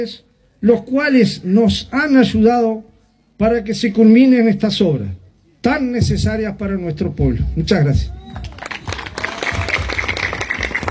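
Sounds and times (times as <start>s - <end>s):
speech: 0.0s - 8.6s
crowd applauding municipal officials: 8.2s - 10.8s.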